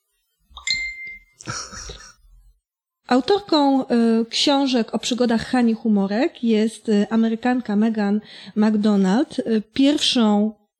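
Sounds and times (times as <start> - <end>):
phone notification ding: 0.6 - 1.4
speech: 3.1 - 10.6.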